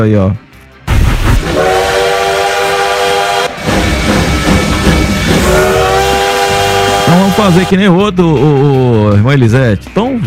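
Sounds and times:
speech: 0:00.0 - 0:00.4, 0:07.5 - 0:10.2
steady rumble of a rolling train: 0:00.9 - 0:07.9
loud train horn blasts: 0:01.4 - 0:03.8, 0:05.2 - 0:07.8.

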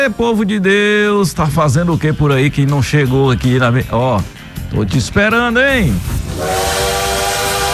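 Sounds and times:
speech: 0:00.1 - 0:06.7
steady steam hiss: 0:05.9 - 0:07.7
loud sustained train whistle sound effect: 0:06.3 - 0:07.7.

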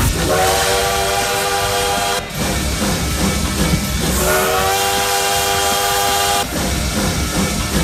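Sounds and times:
loud tonal train whistle blasts: 0:00.0 - 0:02.4, 0:04.2 - 0:06.5
train engine rumbling and hissing: 0:00.0 - 0:07.8.

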